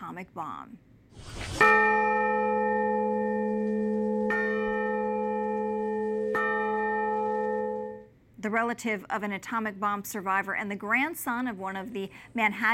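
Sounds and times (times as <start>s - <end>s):
speech: 0.1s - 2.1s, 8.4s - 12.7s
large cathedral bell ringing: 1.6s - 8.1s.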